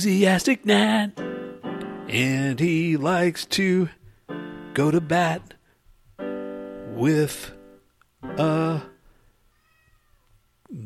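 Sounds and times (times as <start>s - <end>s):
speech: 0.0s - 1.2s, 2.1s - 4.0s, 4.8s - 5.6s, 7.0s - 7.6s, 8.3s - 8.9s
cat meowing: 9.5s - 10.4s.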